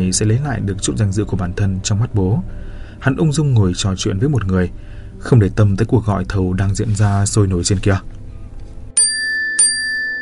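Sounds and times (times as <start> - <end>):
speech: 0.0 - 8.2
auction bell dings signalling the end of a bidding call: 9.0 - 10.2.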